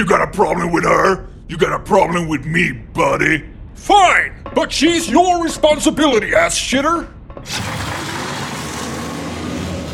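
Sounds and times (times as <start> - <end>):
speech: 0.0 - 7.8
giant truck engine roar: 7.5 - 9.9.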